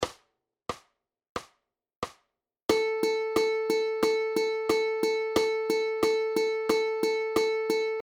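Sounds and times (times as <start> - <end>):
eighth note rhythm: 2.7 - 8.0.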